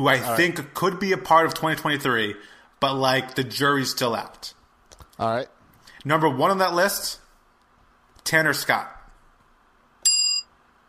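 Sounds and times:
speech: 0:00.0 - 0:04.6, 0:05.2 - 0:07.2, 0:08.2 - 0:09.0
bright bell ringing: 0:10.0 - 0:10.5.

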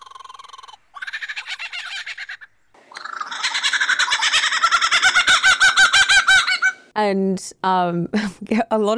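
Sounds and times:
lyrebird imitating a kookaburra's call: 0:00.0 - 0:06.9
speech: 0:07.0 - 0:08.9.

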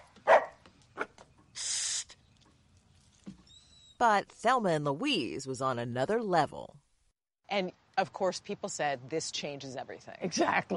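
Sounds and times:
dog barking: 0:00.0 - 0:01.2
harsh hissy burst: 0:01.6 - 0:02.2
speech: 0:04.0 - 0:06.8, 0:07.5 - 0:10.7.

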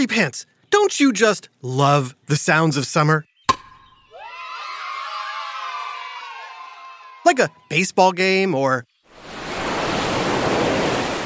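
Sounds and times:
speech: 0:00.0 - 0:03.3, 0:07.3 - 0:08.9
ocean waves crashing at a beach: 0:09.1 - 0:11.2.

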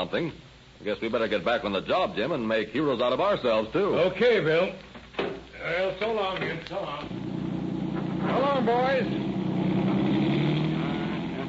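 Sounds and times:
speech: 0:00.0 - 0:04.9, 0:05.6 - 0:07.2, 0:08.3 - 0:09.8
police car engine roaring as it accelerates away: 0:07.0 - 0:11.4.

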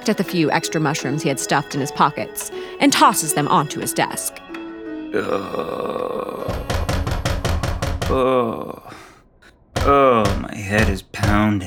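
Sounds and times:
speech: 0:00.0 - 0:04.4, 0:05.1 - 0:06.8, 0:08.1 - 0:09.0, 0:09.8 - 0:11.6
man groaning with strained vocalizing: 0:05.1 - 0:07.0, 0:08.0 - 0:09.2
loud heavy knocks on a door: 0:06.5 - 0:08.2, 0:09.8 - 0:11.6.

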